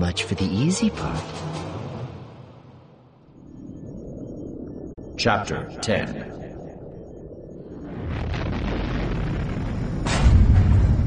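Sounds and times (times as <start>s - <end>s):
speech: 0.1s - 1.6s, 5.2s - 6.4s
blaster fire hitting starship shields as deep booms: 7.9s - 11.0s.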